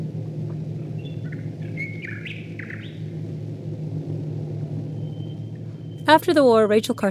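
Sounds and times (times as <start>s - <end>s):
WWII bomber aircraft engines droning: 0.0s - 7.0s
bird singing whistling chirps and trills: 0.9s - 3.2s, 4.9s - 7.0s
speech: 6.1s - 7.0s.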